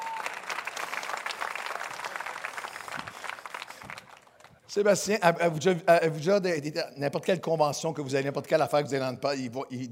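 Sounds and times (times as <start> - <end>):
audience applause: 0.0 - 4.7
speech: 4.7 - 9.8.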